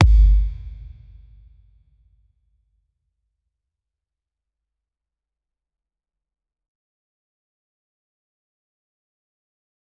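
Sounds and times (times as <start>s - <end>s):
soccer ball kick: 0.0s - 0.7s.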